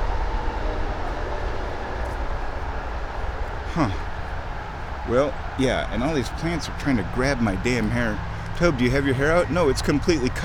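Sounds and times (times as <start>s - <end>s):
distant freeway traffic roar: 0.0s - 10.4s
speech: 3.7s - 4.1s, 5.1s - 10.4s.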